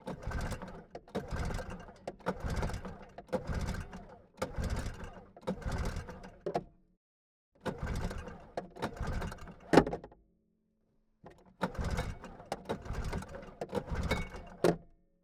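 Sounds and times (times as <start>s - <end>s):
1978 Yamaha ET 340 engine false start at the intake: 0.0s - 6.4s, 7.6s - 9.9s, 11.6s - 14.8s.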